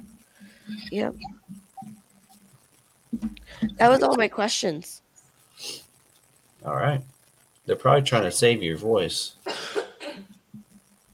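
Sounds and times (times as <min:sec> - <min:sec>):
speech: 0:00.7 - 0:01.4, 0:03.5 - 0:05.0, 0:05.6 - 0:05.8, 0:06.6 - 0:07.1, 0:07.7 - 0:09.6
person coughing from the chest: 0:09.5 - 0:10.3.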